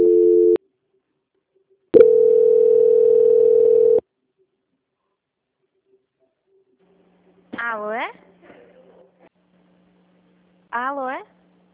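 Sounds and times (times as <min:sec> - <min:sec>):
telephone call transfer tone after a dropped call: 0:00.0 - 0:00.6, 0:02.0 - 0:04.0.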